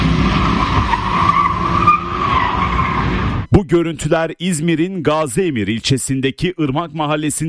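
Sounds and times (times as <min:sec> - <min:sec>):
tire squeal from cars drifting on a residential street in İzmir: 0:00.0 - 0:03.5
speech: 0:03.7 - 0:07.4.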